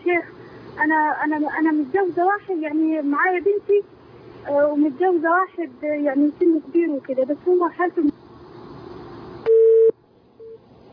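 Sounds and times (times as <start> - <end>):
speech: 0.1 - 8.2
phone busy tone beeps after a call disconnects: 9.5 - 10.6.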